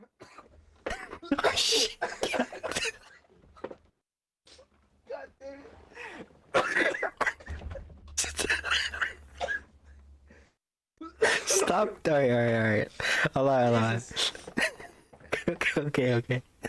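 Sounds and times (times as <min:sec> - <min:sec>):
coughing and throat clearing: 0:00.0 - 0:03.8, 0:06.5 - 0:10.4, 0:11.0 - 0:11.9
speech: 0:01.3 - 0:03.0, 0:11.8 - 0:14.4, 0:15.5 - 0:16.5
low hum: 0:07.4 - 0:10.5.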